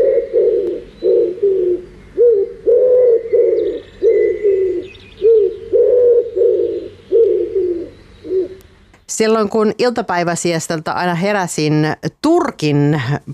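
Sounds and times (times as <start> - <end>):
common wood pigeon cooing: 0.0 - 8.8
faint higher bird chirps: 0.0 - 9.1
speech: 9.2 - 13.3.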